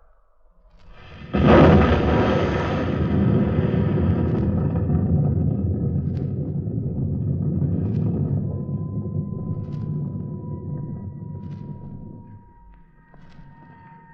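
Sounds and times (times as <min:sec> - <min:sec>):
explosion settling into deep sustained rolling rumble: 0:00.9 - 0:12.5.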